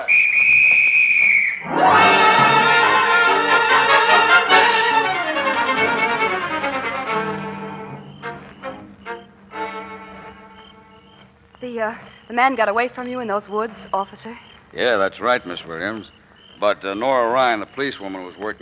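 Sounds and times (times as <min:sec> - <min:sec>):
shrill police whistle blast: 0:00.0 - 0:05.2
dramatic orchestral music: 0:01.6 - 0:11.1
speech: 0:11.8 - 0:18.5.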